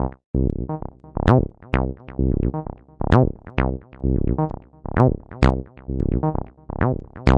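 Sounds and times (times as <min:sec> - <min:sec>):
TB-303 acid bassline loop at 130 bpm: 0:00.0 - 0:07.3.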